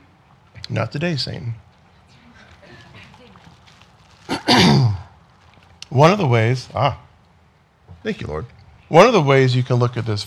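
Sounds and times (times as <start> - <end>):
speech: 0.7 - 1.7, 6.0 - 7.0, 8.0 - 10.2
person clearing throat: 4.3 - 5.1.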